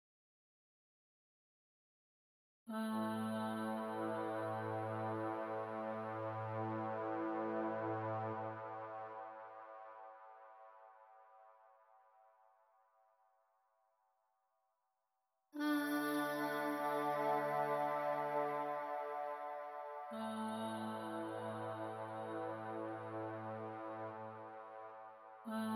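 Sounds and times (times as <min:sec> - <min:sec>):
dreamy voice: 0:02.7 - 0:08.5, 0:15.6 - 0:24.6, 0:25.4 - 0:25.7.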